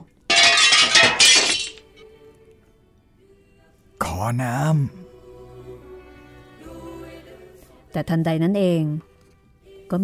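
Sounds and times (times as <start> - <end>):
broken glass cup thrown and shattering on a dirty street: 0.3 - 1.9
speech: 4.2 - 5.1, 7.9 - 9.1, 9.9 - 10.0.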